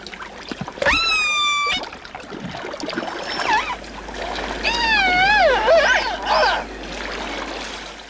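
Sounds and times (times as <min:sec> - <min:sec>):
orca calling underwater in the Pacific Northwest: 0:00.8 - 0:01.8, 0:03.2 - 0:03.8, 0:04.6 - 0:06.7.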